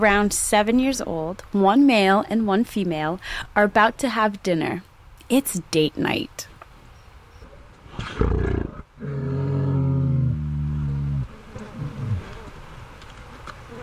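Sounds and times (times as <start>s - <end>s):
speech: 0.0s - 6.5s
insects buzzing around a bison carcass in Yellowstone in summertime: 8.2s - 13.8s.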